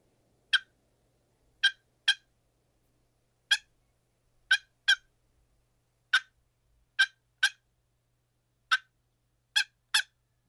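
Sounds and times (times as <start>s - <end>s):
turkey clucks from a wooden box call: 0.5s - 0.7s, 1.6s - 2.3s, 3.5s - 3.7s, 4.5s - 5.1s, 6.1s - 6.4s, 7.0s - 7.6s, 8.7s - 8.9s, 9.6s - 10.2s.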